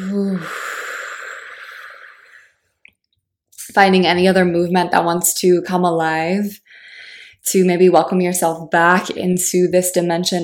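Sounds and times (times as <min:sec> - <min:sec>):
speech: 0:00.0 - 0:00.6, 0:03.7 - 0:10.4
slow deep exhale during a guided relaxation: 0:00.0 - 0:02.6.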